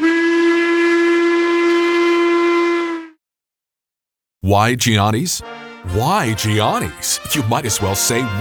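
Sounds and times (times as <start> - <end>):
train whistle: 0.0 - 3.2
speech: 4.5 - 8.3.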